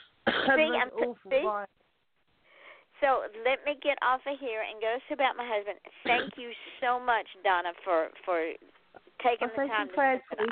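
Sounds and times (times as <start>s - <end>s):
person coughing or clearing throat: 0.0s - 1.1s, 6.1s - 6.3s
speech: 0.5s - 1.8s, 3.0s - 10.4s.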